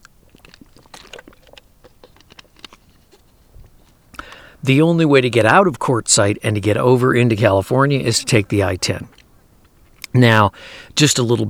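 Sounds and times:
person sipping water: 0:00.0 - 0:04.6, 0:07.9 - 0:11.0
speech: 0:04.6 - 0:09.2, 0:10.1 - 0:11.4.

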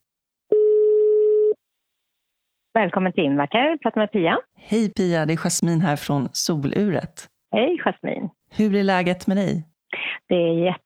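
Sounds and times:
telephone ringback tone while calling: 0:00.5 - 0:01.6
speech: 0:02.8 - 0:09.7, 0:10.3 - 0:10.8.

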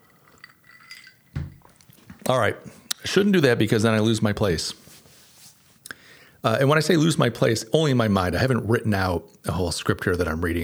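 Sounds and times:
ice cubes clinking against a drinking glass: 0:00.0 - 0:02.0
drinking glass knocking as it is set down: 0:00.0 - 0:02.2
speech: 0:02.3 - 0:04.8, 0:06.4 - 0:10.6.

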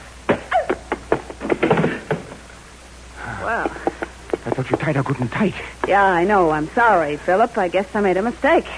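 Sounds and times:
wooden chair striking a person: 0:00.3 - 0:02.4
speech: 0:04.9 - 0:08.7.

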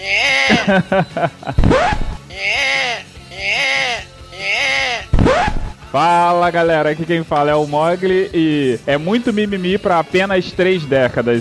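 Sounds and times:
baby wailing in strained rising cries with gasps: 0:00.0 - 0:00.7, 0:02.2 - 0:05.1
laughter: 0:00.0 - 0:01.8
speech: 0:00.0 - 0:02.0, 0:05.9 - 0:11.3.

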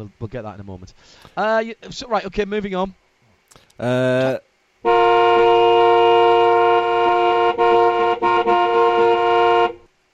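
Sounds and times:
speech: 0:00.0 - 0:05.2
car horn honking: 0:04.8 - 0:09.9.

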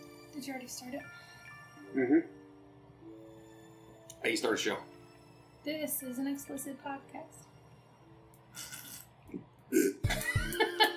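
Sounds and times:
speech: 0:00.4 - 0:02.4, 0:04.1 - 0:04.9, 0:05.6 - 0:07.5, 0:09.3 - 0:10.9
loud sputtering fart: 0:08.6 - 0:09.1.

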